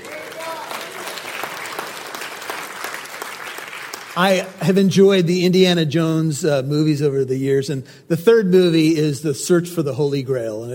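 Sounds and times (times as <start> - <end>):
audience clapping: 0.0 - 4.8
speech: 4.2 - 10.7.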